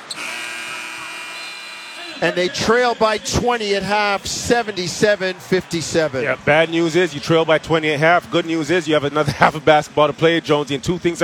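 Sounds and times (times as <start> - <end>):
basketball end-of-half buzzer: 0.1 - 2.2
speech: 2.2 - 11.2.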